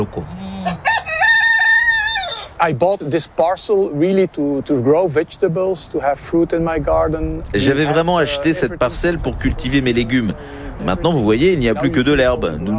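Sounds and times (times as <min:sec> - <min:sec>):
speech: 0:00.0 - 0:00.3, 0:02.6 - 0:12.7
rooster crowing in a garden: 0:00.6 - 0:02.6.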